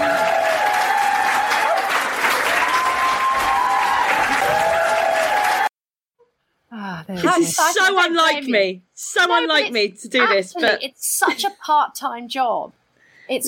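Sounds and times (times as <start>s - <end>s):
canned applause and cheering with whistles: 0.0s - 5.8s
speech: 7.3s - 13.4s.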